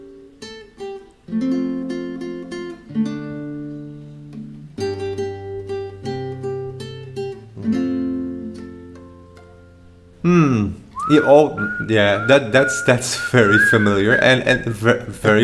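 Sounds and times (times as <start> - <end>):
guitar picking out a steady run of chords: 0.0 - 15.4
speech: 1.3 - 1.8, 11.1 - 15.4
short bright whistled phrase: 11.0 - 15.4.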